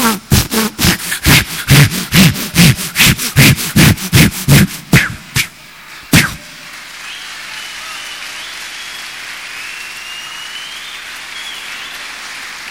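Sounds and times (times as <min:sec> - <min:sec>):
imitation of a hand saw cutting through an iron pipe: 0:00.0 - 0:05.5.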